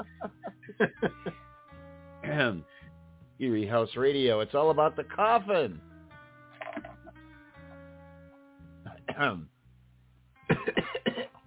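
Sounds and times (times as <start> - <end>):
laughter: 0.0 - 1.4, 10.5 - 10.9
speech: 0.8 - 1.2, 2.4 - 2.7, 3.4 - 5.9, 9.2 - 9.5
person coughing: 8.9 - 9.4, 10.5 - 11.4.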